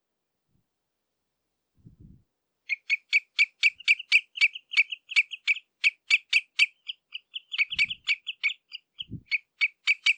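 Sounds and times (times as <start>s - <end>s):
common redshank contact calls: 2.7s - 10.1s.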